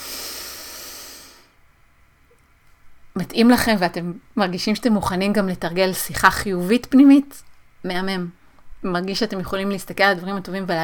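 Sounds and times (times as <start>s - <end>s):
woman drawing a long airy breath: 0.0s - 1.6s
speech: 3.2s - 10.8s.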